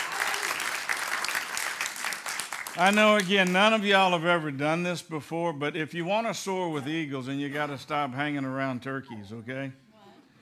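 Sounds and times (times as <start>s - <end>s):
congregation clapping hands in praise during a church service: 0.0s - 4.2s
speech: 2.8s - 9.8s.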